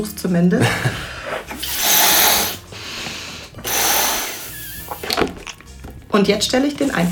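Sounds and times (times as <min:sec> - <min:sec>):
speech: 0:00.0 - 0:01.8, 0:06.1 - 0:07.0
forceful puffs of breath blowing up a balloon: 0:01.2 - 0:05.4.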